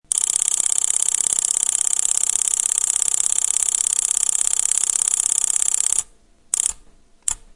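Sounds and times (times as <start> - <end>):
high speed mechanical relay clicking: 0.1 - 7.4.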